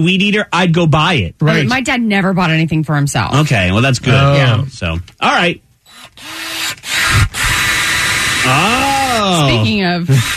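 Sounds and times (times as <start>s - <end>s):
speech: 0.0s - 5.6s, 6.2s - 6.9s, 8.4s - 10.3s
power drill whirring: 5.9s - 10.3s.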